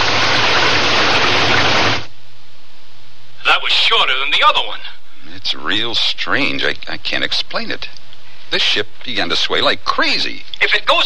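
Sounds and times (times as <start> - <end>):
heavy rain pouring: 0.0 - 2.1
speech: 3.6 - 11.0.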